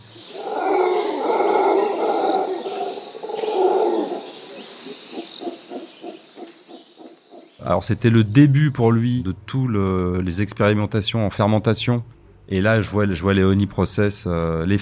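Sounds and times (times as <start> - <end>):
howler monkeys howling in a jungle at night: 0.0 - 8.0
birds calling in a jungle at night: 0.0 - 8.9
insects buzzing in a jungle at night: 0.0 - 9.3
speech: 7.7 - 14.8.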